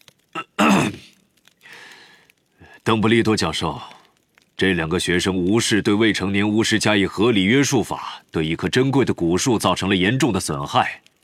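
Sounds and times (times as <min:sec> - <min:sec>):
man clearing throat: 0:00.4 - 0:01.1
speech: 0:02.9 - 0:04.0, 0:04.6 - 0:11.1.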